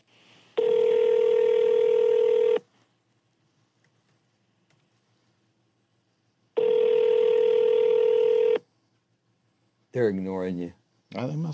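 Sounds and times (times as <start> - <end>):
electronic ringback tones through a phone line: 0.6 - 2.6, 6.6 - 8.6
speech: 10.0 - 11.5.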